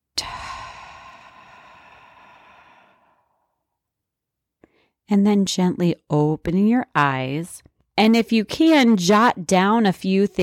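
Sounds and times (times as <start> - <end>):
deep exhale during a guided meditation breathing exercise: 0.2 - 3.6
speech: 5.1 - 10.4.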